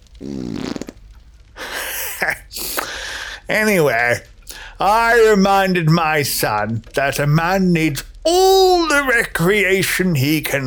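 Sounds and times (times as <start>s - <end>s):
short buzzy fart: 0.0s - 1.2s
loud breathy hissing bursts: 0.1s - 1.0s, 1.6s - 3.5s, 4.5s - 4.9s
speech: 0.2s - 0.6s, 2.2s - 2.9s, 3.5s - 10.6s.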